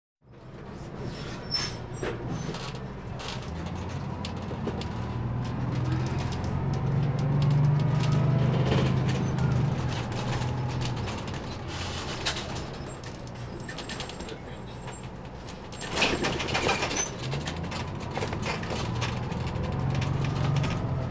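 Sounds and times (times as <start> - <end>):
bus ride on board in New York City: 0.2 - 21.0.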